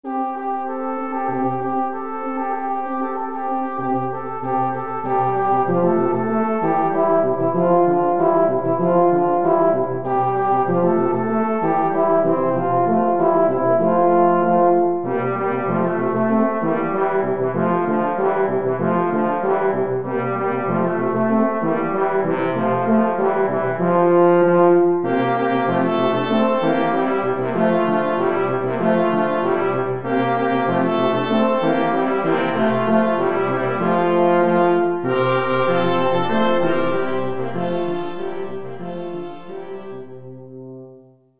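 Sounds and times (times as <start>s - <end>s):
brass quintet playing: 0.0s - 41.2s.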